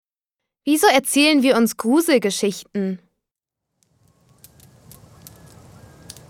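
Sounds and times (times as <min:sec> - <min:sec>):
speech: 0:00.6 - 0:03.0
campfire crackling with roaring flames: 0:03.8 - 0:06.2
sharp pops of campfire: 0:03.8 - 0:06.2.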